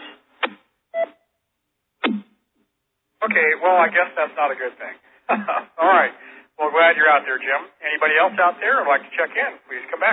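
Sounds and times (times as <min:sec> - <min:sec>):
server alert beeps sweeping downward in pitch: 0:01.0 - 0:01.2
speech: 0:03.2 - 0:06.2, 0:06.8 - 0:10.1.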